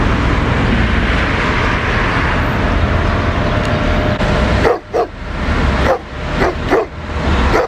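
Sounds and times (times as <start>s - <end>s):
loud steady rushing noise: 0.0s - 7.6s
stray street dogs barking in a parking lot in Istanbul: 4.6s - 5.2s, 5.8s - 7.6s.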